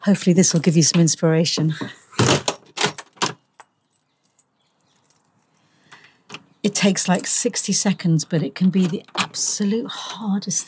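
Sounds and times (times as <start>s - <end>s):
speech: 0.0s - 2.4s, 6.8s - 10.6s
door clicks and knocks: 1.7s - 3.4s
keys jangling: 2.7s - 5.6s.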